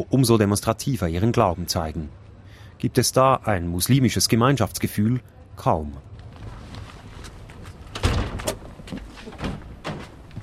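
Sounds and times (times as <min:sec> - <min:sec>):
speech: 0:00.0 - 0:06.1
faint ambient hum: 0:00.0 - 0:10.4
doors opening and closing: 0:06.2 - 0:10.4.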